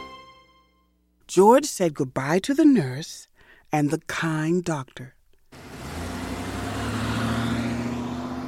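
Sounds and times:
speech: 0:01.3 - 0:05.1
car engine pulling away and accelerating: 0:05.5 - 0:08.4
road noise: 0:05.5 - 0:08.4.

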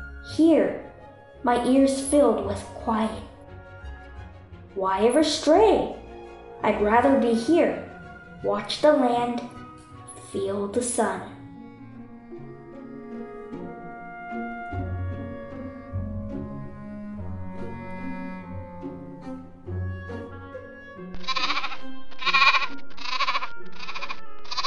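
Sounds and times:
gentle music: 0:00.0 - 0:24.6
speech: 0:00.4 - 0:03.3, 0:04.8 - 0:06.0, 0:06.6 - 0:09.6, 0:10.3 - 0:11.3
young goats bleating: 0:21.2 - 0:24.6.

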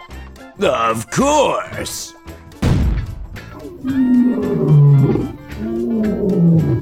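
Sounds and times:
speech: 0:00.6 - 0:02.2, 0:03.8 - 0:05.1
lion roaring and growling: 0:03.5 - 0:06.8.

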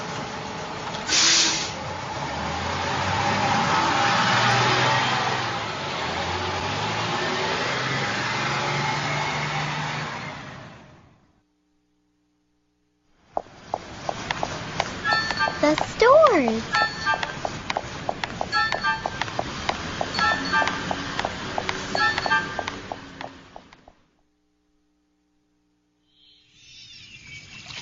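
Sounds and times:
buses rumbling past on a busy street: 0:00.0 - 0:11.2, 0:13.2 - 0:24.1.

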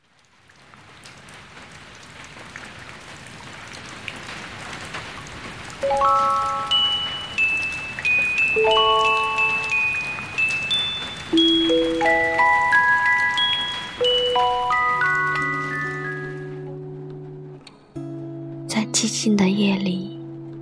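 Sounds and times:
steady rain hissing: 0:00.0 - 0:17.6
gentle melody of sustained chime-like notes: 0:05.8 - 0:16.7
speech: 0:05.9 - 0:06.8, 0:19.0 - 0:20.1.

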